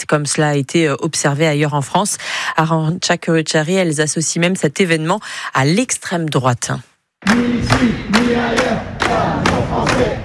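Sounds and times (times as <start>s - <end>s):
speech: 0.0s - 10.2s
protest crowd chanting outside a town hall: 7.2s - 10.2s
thumping beats: 7.2s - 10.2s.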